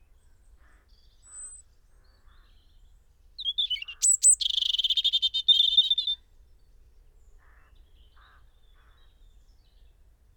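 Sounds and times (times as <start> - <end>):
European robin Erithacus rubecula singing: 3.4 - 6.2.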